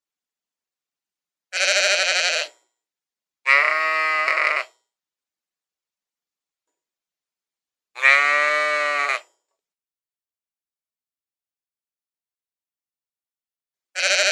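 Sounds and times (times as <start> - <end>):
sheep bleating: 1.5 - 2.6, 3.5 - 4.8, 8.0 - 9.3, 14.0 - 14.3.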